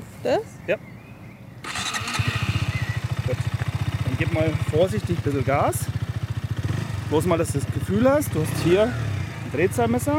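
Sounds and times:
speech: 0:00.2 - 0:01.0, 0:03.3 - 0:03.6, 0:04.2 - 0:06.0, 0:07.1 - 0:10.1
engine cranking with push-button starter: 0:01.6 - 0:03.6
engine idling: 0:01.7 - 0:10.1.

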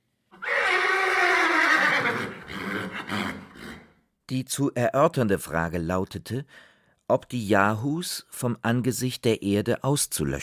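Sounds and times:
horse neighing loudly: 0:00.4 - 0:04.0
speech: 0:04.3 - 0:10.4.

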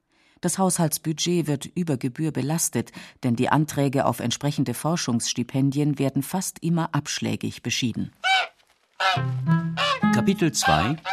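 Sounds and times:
speech: 0:00.4 - 0:08.3, 0:09.2 - 0:11.1
goose honking: 0:08.2 - 0:11.1.

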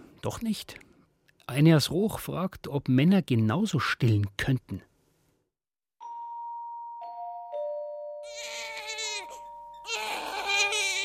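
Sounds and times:
speech: 0:00.2 - 0:00.9, 0:01.5 - 0:04.9
soft chime-like tones: 0:06.0 - 0:10.2
baby crying loudly at night: 0:08.2 - 0:11.0.

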